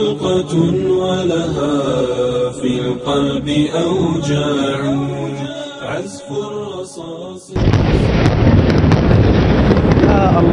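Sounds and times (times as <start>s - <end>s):
speech: 0.0s - 9.2s, 10.2s - 10.5s
shelling explosion on residential towers: 7.6s - 10.5s.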